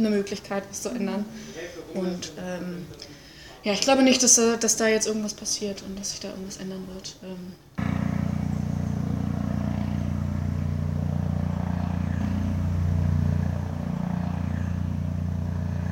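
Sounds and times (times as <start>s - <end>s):
speech: 0.0s - 7.6s
helicopters droning overhead circling over an office: 7.8s - 15.8s.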